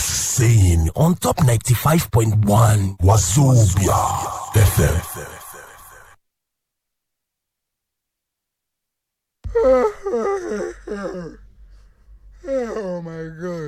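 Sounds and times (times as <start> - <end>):
speech: 0.4 - 5.4
person yawning: 3.8 - 6.2, 9.5 - 11.4, 12.4 - 13.6.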